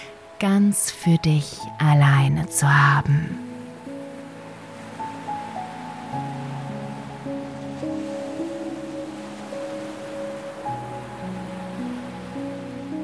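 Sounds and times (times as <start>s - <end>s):
sustained gentle ambient music tones: 0.0s - 13.0s
speech: 0.4s - 3.5s
ocean waves washing onto a beach: 2.6s - 13.0s.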